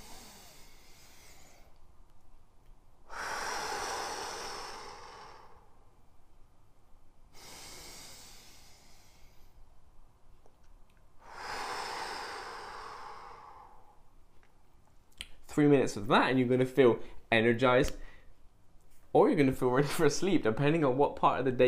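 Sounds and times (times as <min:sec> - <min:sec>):
slow deep breathing during a breathing exercise: 0:00.0 - 0:02.0, 0:03.0 - 0:06.2, 0:07.2 - 0:10.0, 0:11.2 - 0:14.2, 0:18.0 - 0:18.5
speech: 0:15.6 - 0:18.0, 0:19.3 - 0:21.6.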